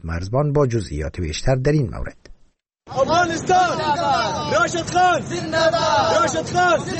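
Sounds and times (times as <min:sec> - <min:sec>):
speech: 0:00.0 - 0:02.3, 0:02.9 - 0:06.9
crowd of Afghan cricket fans shouting and cheering at a cricket match in Pakistan: 0:02.9 - 0:06.9.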